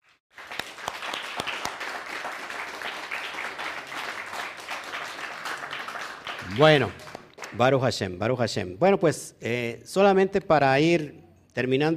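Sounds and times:
crowd applauding with dense clapping: 0.3s - 7.8s
speech: 6.5s - 11.9s.

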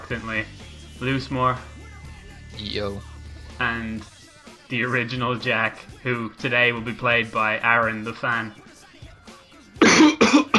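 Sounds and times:
speech: 0.1s - 1.8s, 2.5s - 8.6s
person coughing: 9.8s - 10.5s.

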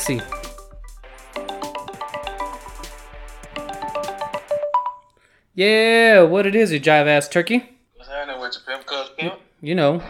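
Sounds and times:
speech: 0.0s - 0.4s, 5.6s - 10.0s
phone ringing on an outgoing call with an electronic melody: 0.0s - 5.1s.

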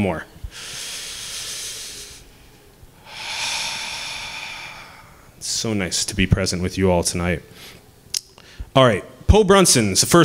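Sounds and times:
speech: 0.0s - 0.8s, 5.4s - 7.8s, 8.8s - 10.2s
audience inhaling deeply together: 0.5s - 2.3s, 3.0s - 5.3s.

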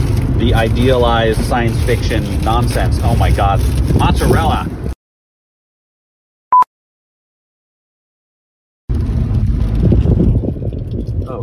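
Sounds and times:
low road and engine rumble inside a moving car: 0.0s - 5.0s, 8.9s - 11.4s
speech: 0.4s - 4.8s.

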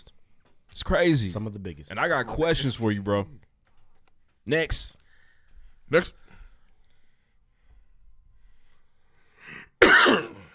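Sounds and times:
speech: 0.8s - 3.5s, 4.5s - 5.0s, 5.9s - 6.2s
person coughing: 9.5s - 10.5s.

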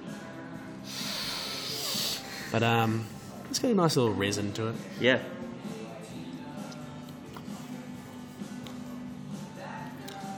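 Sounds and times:
nasal sniff of a glass of hazy beer: 0.8s - 2.5s
speech: 2.5s - 5.4s.

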